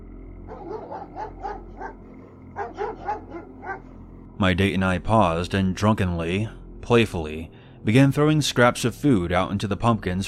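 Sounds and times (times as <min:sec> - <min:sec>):
dogs barking yappily: 0:00.5 - 0:04.1
speech: 0:00.6 - 0:02.0, 0:02.6 - 0:10.2.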